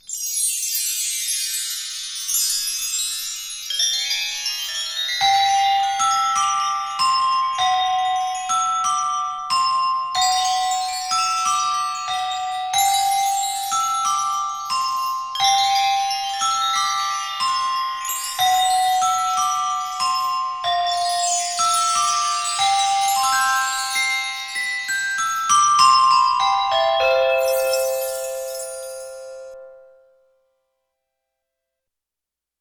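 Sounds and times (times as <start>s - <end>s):
wind chime: 0.0s - 30.4s
handbell ringing: 10.0s - 30.0s.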